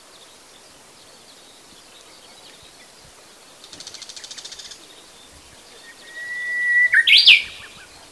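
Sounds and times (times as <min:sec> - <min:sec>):
Japanese bush warbler singing a pure whistle and warbled flourish: 0:00.0 - 0:08.1.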